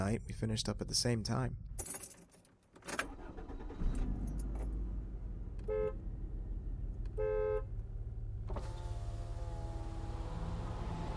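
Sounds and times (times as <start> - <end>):
speech: 0.0 - 2.1
car engine rumbling as the vehicle pulls up and idles: 3.1 - 11.1
car horn toots: 5.6 - 6.0, 7.1 - 7.7
electric car window rolling down: 8.4 - 11.1.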